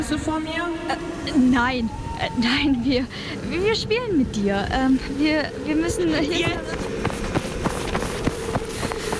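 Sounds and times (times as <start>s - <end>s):
speech: 0.0s - 6.9s
children's running footsteps outdoors: 6.3s - 9.1s.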